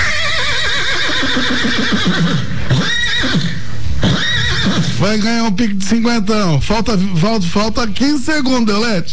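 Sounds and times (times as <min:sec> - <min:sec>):
horse neighing: 0:00.0 - 0:05.1
speech: 0:05.0 - 0:09.1.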